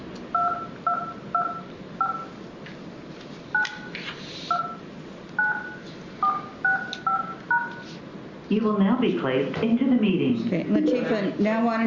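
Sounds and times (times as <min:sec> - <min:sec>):
telephone keypad beeps entering a meeting ID: 0:00.4 - 0:02.3, 0:05.4 - 0:07.8
speech: 0:08.5 - 0:11.8.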